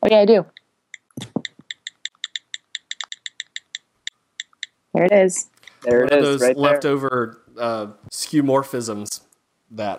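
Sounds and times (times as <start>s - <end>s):
speech: 0.1s - 0.6s, 5.0s - 9.9s
device clicks: 0.5s - 4.8s.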